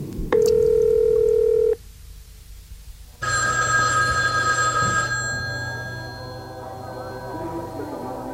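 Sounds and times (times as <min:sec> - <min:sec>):
telephone ringing loudly and brightly: 0:00.4 - 0:01.8, 0:03.2 - 0:08.3.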